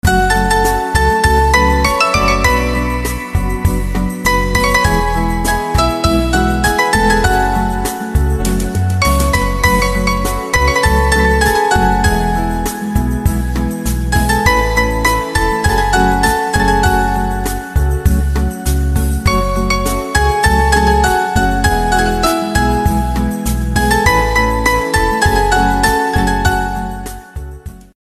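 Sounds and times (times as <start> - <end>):
piano instrumental: 0.0 - 27.9.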